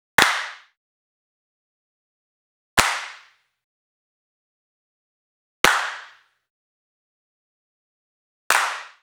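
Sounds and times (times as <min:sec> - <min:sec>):
hand claps with small ambience: 0:00.2 - 0:00.8, 0:02.8 - 0:03.4, 0:05.6 - 0:06.3, 0:08.5 - 0:09.0.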